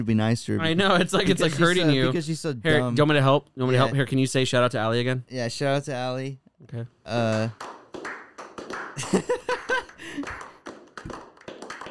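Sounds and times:
speech: 0:00.0 - 0:08.1
laughter: 0:00.7 - 0:02.2, 0:09.0 - 0:10.5
hand clapping from a few people: 0:07.2 - 0:11.8.

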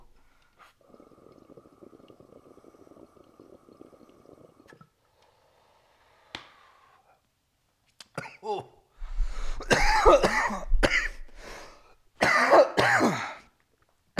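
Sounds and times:
person coughing harshly: 0:08.2 - 0:08.8, 0:09.6 - 0:11.3, 0:12.2 - 0:13.5
speech: 0:08.4 - 0:08.7.

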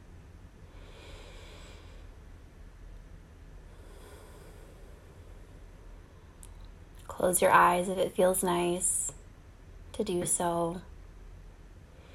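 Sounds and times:
steady low hiss: 0:00.0 - 0:12.1
deep grounding breaths drawn slowly through the airway: 0:00.6 - 0:02.2, 0:03.6 - 0:06.4
speech: 0:07.2 - 0:09.0, 0:10.0 - 0:10.9.

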